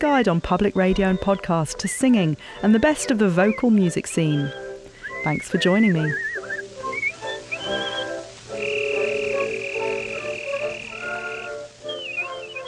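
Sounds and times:
speech: 0:00.0 - 0:06.3
virtuoso whistling from a 1921 recording: 0:03.0 - 0:12.6.

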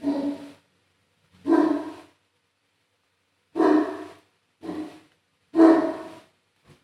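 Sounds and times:
dog barking: 0:00.0 - 0:00.6, 0:01.4 - 0:02.2, 0:03.6 - 0:06.3.

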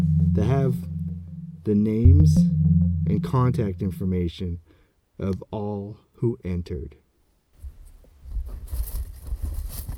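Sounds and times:
speech: 0:00.4 - 0:01.0, 0:01.6 - 0:04.6, 0:05.2 - 0:07.0
paper strips with names rustling and crinkling inside a hat: 0:08.4 - 0:09.9.

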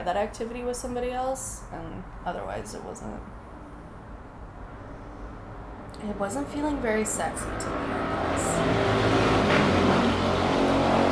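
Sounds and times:
speech: 0:00.0 - 0:03.4, 0:06.0 - 0:10.1
rush-hour traffic roar from a busy street: 0:00.0 - 0:11.1.

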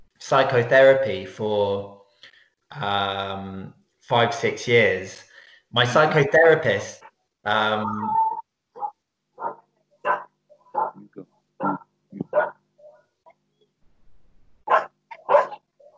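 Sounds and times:
speech: 0:00.3 - 0:02.0, 0:02.7 - 0:08.2
puppy barking in short sharp yips: 0:08.8 - 0:11.0, 0:11.6 - 0:13.0, 0:14.7 - 0:15.9.

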